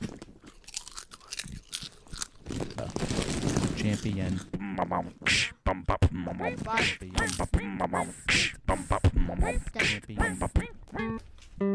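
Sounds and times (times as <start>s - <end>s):
potato chips being chewed: 0.0s - 4.6s
speech: 3.8s - 5.5s, 6.1s - 11.7s.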